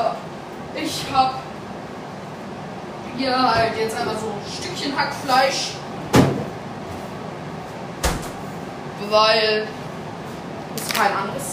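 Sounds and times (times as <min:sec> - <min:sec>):
speech: 0:00.8 - 0:01.5, 0:03.2 - 0:05.8, 0:09.0 - 0:09.8, 0:10.8 - 0:11.5
refrigerator door opening and closing: 0:06.1 - 0:06.5, 0:08.0 - 0:08.5.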